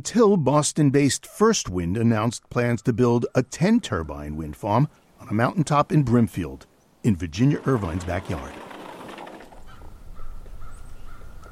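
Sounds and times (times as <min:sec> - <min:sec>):
speech: 0:00.0 - 0:08.6
crows cawing overhead: 0:09.6 - 0:11.5.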